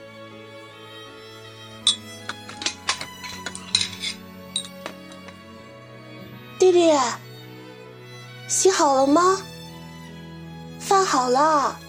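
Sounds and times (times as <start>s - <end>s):
dishes, pots and cutlery clinking while a meal is cooked in a kitchen: 1.9s - 5.4s
speech: 6.6s - 7.2s, 8.5s - 9.5s, 11.1s - 11.8s.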